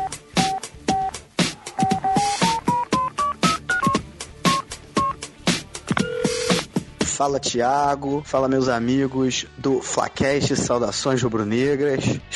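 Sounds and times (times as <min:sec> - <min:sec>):
rhythmic percussive thumps: 0:00.0 - 0:07.2
phone keypad beeps while dialing: 0:01.8 - 0:05.2, 0:05.9 - 0:06.6
speech: 0:07.2 - 0:12.3.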